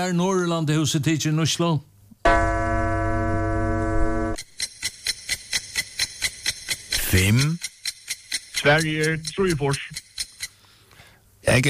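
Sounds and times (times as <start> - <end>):
speech: 0.0 - 2.5, 7.1 - 7.6, 8.6 - 10.1, 11.5 - 11.6
long steady electronic tone: 2.2 - 4.4
clock ticking: 4.4 - 10.6.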